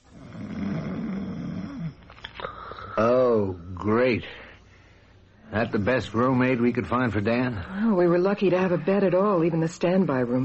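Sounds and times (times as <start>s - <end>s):
man snoring loudly: 0.0s - 2.0s
quiet breathing: 2.4s - 3.0s, 4.2s - 5.4s
speech: 3.0s - 4.4s, 5.5s - 10.4s.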